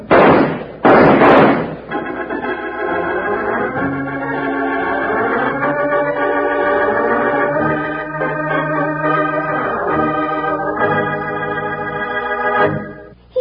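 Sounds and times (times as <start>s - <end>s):
gunshots in a radio western shootout: 0.1s - 2.3s
bright instrumental music: 1.3s - 13.3s.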